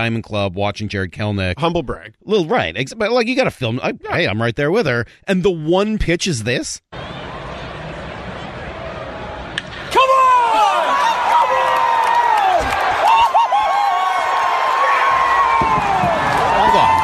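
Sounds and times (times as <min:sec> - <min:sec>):
speech: 0:00.0 - 0:06.9
ballpark stadium crowd cheering home run: 0:06.9 - 0:17.0
man screaming and yelling excitedly: 0:09.9 - 0:15.4.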